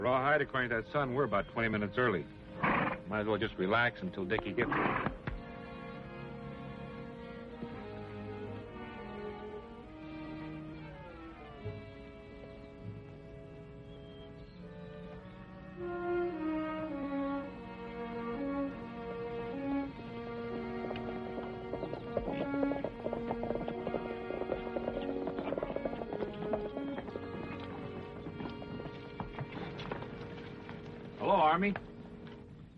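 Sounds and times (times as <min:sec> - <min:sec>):
speech: 0:00.0 - 0:05.1
loud orchestral music: 0:00.0 - 0:32.6
horse hooves clip-clopping at walking pace: 0:00.2 - 0:06.1, 0:07.0 - 0:32.7
horse sound: 0:02.6 - 0:03.4, 0:04.2 - 0:05.4, 0:19.5 - 0:32.7.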